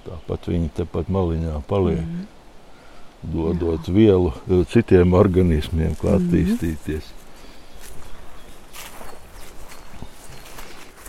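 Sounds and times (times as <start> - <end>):
speech: 0.3 - 2.4, 3.2 - 7.2
footsteps walking along a forest trail in a protected nature area: 5.8 - 11.0.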